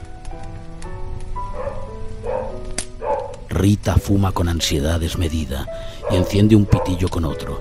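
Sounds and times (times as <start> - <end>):
steady rain-like hiss: 0.0 - 7.5
dogs barking: 1.4 - 3.5, 5.8 - 7.4
speech: 3.6 - 7.5.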